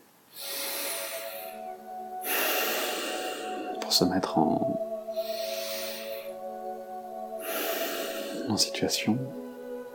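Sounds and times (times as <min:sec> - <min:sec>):
deep breaths during a guided relaxation exercise: 0:00.3 - 0:03.8, 0:05.1 - 0:06.6, 0:07.3 - 0:08.6
speech: 0:03.9 - 0:04.9, 0:08.5 - 0:09.4.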